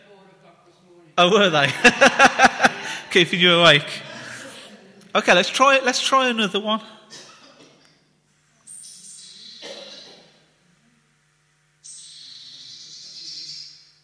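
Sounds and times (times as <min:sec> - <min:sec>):
speech: 0:01.2 - 0:04.1, 0:05.2 - 0:07.2
laughter: 0:01.3 - 0:05.0
blue tit warning call: 0:08.7 - 0:10.2, 0:11.8 - 0:13.8.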